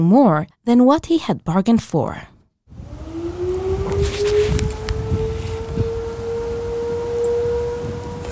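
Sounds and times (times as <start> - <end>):
speech: 0.0 - 2.3
tsunami warning siren wailing: 2.7 - 8.3
wind: 2.7 - 8.3.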